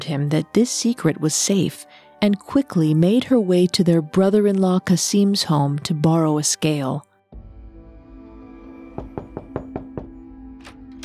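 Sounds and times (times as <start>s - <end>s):
speech: 0.1s - 7.1s
knocking on a wooden door of a home: 9.0s - 10.2s.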